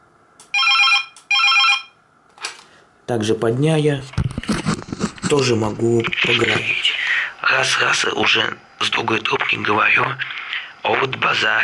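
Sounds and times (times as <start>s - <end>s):
telephone ringing: 0.5s - 2.0s
speech: 3.1s - 4.2s, 5.3s - 6.8s, 7.4s - 11.6s.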